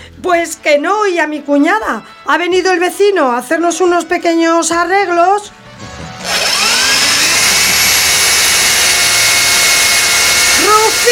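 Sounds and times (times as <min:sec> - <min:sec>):
speech: 0:00.2 - 0:06.4
power drill running at high speed: 0:05.7 - 0:11.0.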